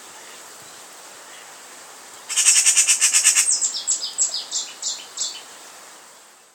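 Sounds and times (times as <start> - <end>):
Eurasian magpie Pica pica chattering: 2.3 - 3.6.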